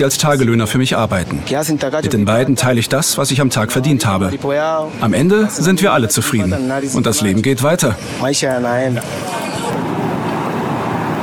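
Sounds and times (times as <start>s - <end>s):
speech: 0.0s - 9.9s
steady roar of road traffic: 0.0s - 11.2s
cars rushing past: 6.7s - 11.2s.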